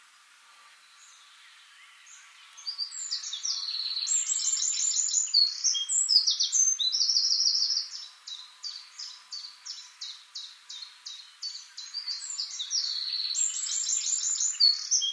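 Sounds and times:
Eurasian wren Troglodytes troglodytes singing: 0:01.0 - 0:15.1.

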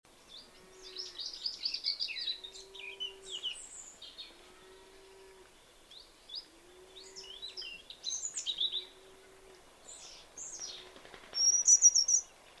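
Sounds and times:
European robin Erithacus rubecula singing: 0:00.2 - 0:04.8, 0:05.6 - 0:09.0, 0:11.4 - 0:12.4.

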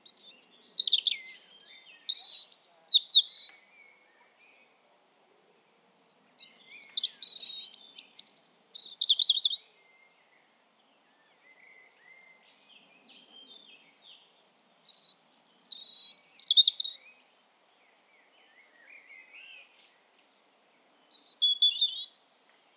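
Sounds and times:
European robin Erithacus rubecula singing: 0:00.0 - 0:04.7, 0:06.1 - 0:10.4, 0:11.0 - 0:17.2, 0:20.8 - 0:22.7.

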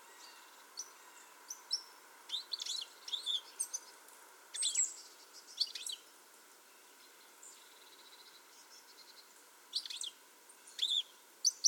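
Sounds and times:
faint steady hum: 0:00.0 - 0:11.6
European goldfinch Carduelis carduelis chirping: 0:00.2 - 0:03.9, 0:04.5 - 0:06.0, 0:07.5 - 0:11.6.

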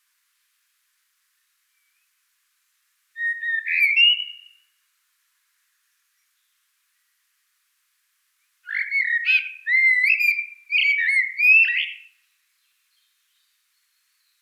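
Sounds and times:
common blackbird Turdus merula singing fluting warbled whistles: 0:03.2 - 0:04.8, 0:05.7 - 0:07.3, 0:08.4 - 0:14.3.

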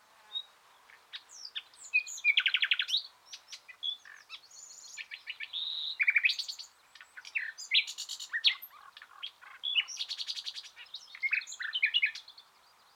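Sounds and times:
Common nightingale Luscinia megarhynchos song: 0:00.2 - 0:12.9.

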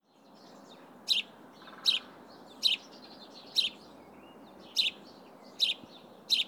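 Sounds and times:
House sparrow Passer domesticus chirping: 0:01.1 - 0:02.0, 0:02.6 - 0:02.9, 0:03.5 - 0:03.8, 0:04.7 - 0:06.4.

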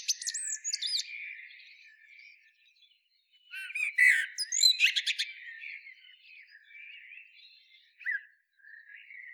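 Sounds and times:
common blackbird Turdus merula singing: 0:00.0 - 0:02.5, 0:03.5 - 0:09.3.

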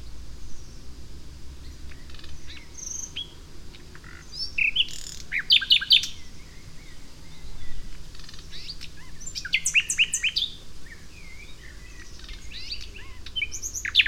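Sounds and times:
Common nightingale Luscinia megarhynchos singing: 0:01.6 - 0:14.0.

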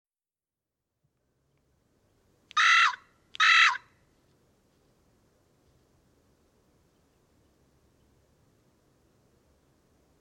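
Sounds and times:
quiet low-level background noise: 0:00.7 - 0:10.1
carrion crow Corvus corone cawing hoarsely: 0:02.6 - 0:03.9.

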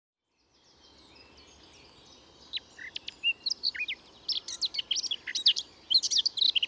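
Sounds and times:
Eurasian blackcap Sylvia atricapilla warbling song: 0:00.2 - 0:06.6.

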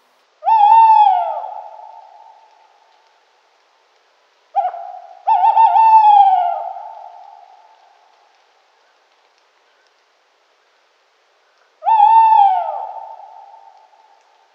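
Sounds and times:
tawny owl Strix aluco hooting: 0:00.4 - 0:03.0, 0:04.5 - 0:08.2, 0:11.8 - 0:14.4.

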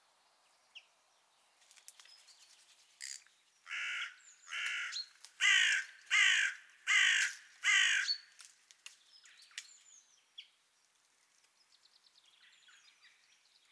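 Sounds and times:
carrion crow Corvus corone cawing: 0:03.0 - 0:08.2.

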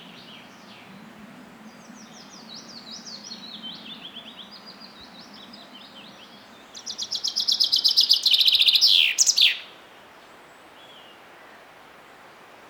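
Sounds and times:
common chaffinch Fringilla coelebs singing: 0:02.0 - 0:09.7.

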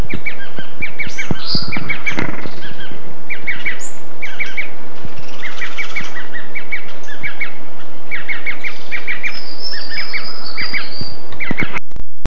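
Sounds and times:
bird twittering in quick chirping phrases: 0:00.0 - 0:11.8
constant noise: 0:00.0 - 0:12.2.

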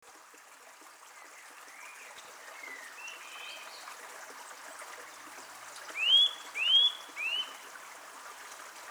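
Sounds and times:
Eurasian nuthatch Sitta europaea calling with rising whistled notes: 0:06.0 - 0:07.6.

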